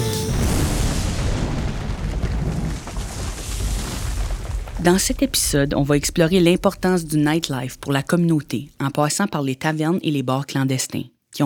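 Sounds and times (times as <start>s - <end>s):
loud deep explosion boom with a rumbling low-end roar: 0.0s - 8.8s
speech: 4.8s - 11.4s.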